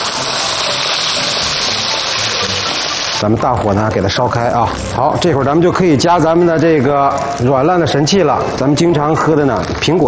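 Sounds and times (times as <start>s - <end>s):
hot water poured into stir-fried beef brisket and tendon in a wok: 0.0s - 3.2s
speech: 3.2s - 10.0s.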